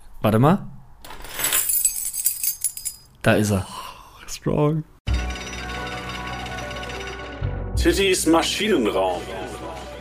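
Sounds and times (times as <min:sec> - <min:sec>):
speech: 0:00.2 - 0:00.7, 0:03.2 - 0:03.8, 0:04.4 - 0:04.9, 0:07.8 - 0:09.9
bunch of keys jangling: 0:01.2 - 0:03.1.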